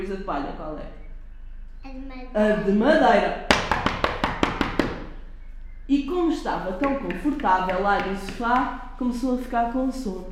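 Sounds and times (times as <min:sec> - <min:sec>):
speech: 0:00.0 - 0:01.0, 0:01.8 - 0:03.7, 0:05.9 - 0:10.3
quick knocks on a wooden door: 0:03.6 - 0:05.2, 0:06.8 - 0:08.8.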